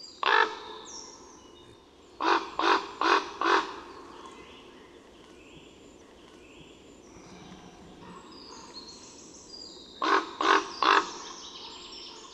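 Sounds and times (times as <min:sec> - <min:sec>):
large corvid croaking: 0:02.2 - 0:04.2, 0:07.1 - 0:08.8, 0:10.0 - 0:11.4.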